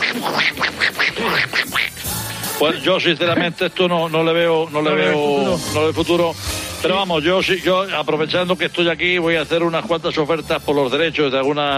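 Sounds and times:
person imitating duck quacks: 0.0 - 2.1
speech: 2.6 - 11.7.

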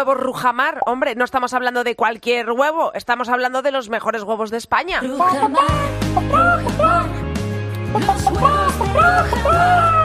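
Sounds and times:
speech: 0.0 - 7.2, 7.9 - 10.0
musical backing with a deep bass line: 5.8 - 10.0
ground-raised laying hens clucking: 8.0 - 9.5.

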